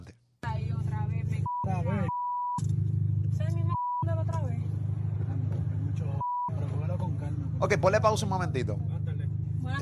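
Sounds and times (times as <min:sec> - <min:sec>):
parked car engine idling with loud modified exhaust: 0:00.4 - 0:09.8
short high censor beeps: 0:01.4 - 0:02.6, 0:03.7 - 0:04.1
speech: 0:07.6 - 0:09.0.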